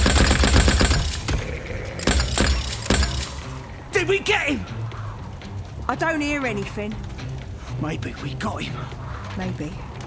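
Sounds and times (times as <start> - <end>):
rapid gunfire in a firefight: 0.0 - 3.7
speech: 4.1 - 4.8, 5.9 - 7.1, 7.8 - 9.9.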